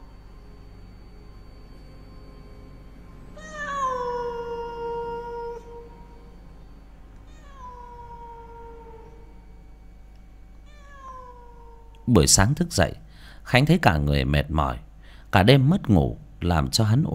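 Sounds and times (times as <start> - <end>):
black cat meowing around a market neighbourhood at night: 3.4 - 6.2, 7.2 - 9.3, 10.6 - 12.1
speech: 12.1 - 17.1.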